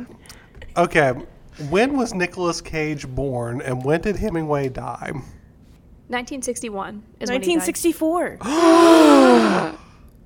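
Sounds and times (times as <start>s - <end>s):
speech: 0.8s - 5.4s, 6.1s - 9.7s
short excited vocal sounds: 8.4s - 9.8s
two people gasping: 8.4s - 10.0s.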